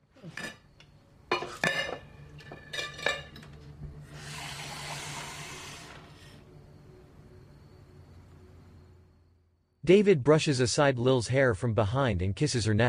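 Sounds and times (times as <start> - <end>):
dishes clinking and clattering in a sink while being washed: 0.3 - 3.6
man putting down a plate: 1.3 - 3.6
steady hiss of running water: 4.0 - 6.5
speech: 9.9 - 12.8.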